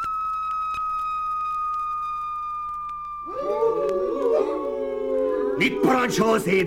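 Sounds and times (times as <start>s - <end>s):
long steady high whistle blown to summon a wolf: 0.0s - 4.6s
chorus of rising wavering wolf howls: 3.3s - 6.4s
speech: 5.6s - 6.6s.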